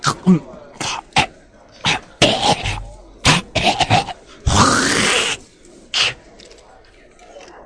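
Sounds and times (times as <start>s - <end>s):
person coughing and choking after swallowing wrong: 0.0s - 5.3s.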